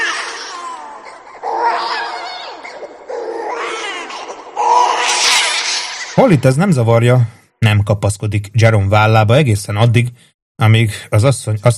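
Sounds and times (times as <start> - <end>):
baby crying from stereo speakers beside a computer: 0.0 - 6.4
speech: 6.2 - 11.7.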